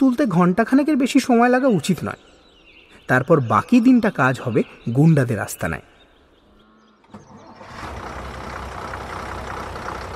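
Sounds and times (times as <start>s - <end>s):
speech: 0.0s - 2.3s, 3.1s - 5.9s
loaded bus engine rumbling as it departs: 7.1s - 10.1s.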